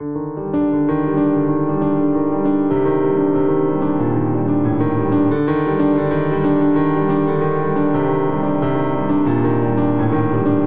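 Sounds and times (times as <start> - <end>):
cinematic grave ostinato in G minor on grand piano: 0.0 - 10.6.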